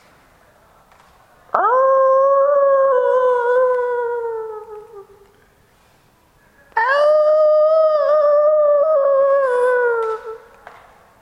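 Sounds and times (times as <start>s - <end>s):
wolf howling: 1.6s - 5.1s, 6.8s - 10.4s.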